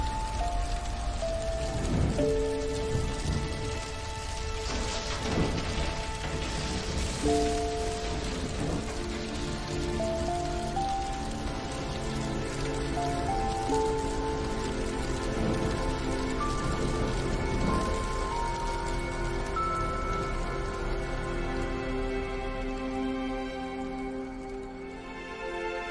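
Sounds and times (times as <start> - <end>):
house fire burning and crackling: 0.0 - 25.9
sustained musical tones: 0.0 - 25.9.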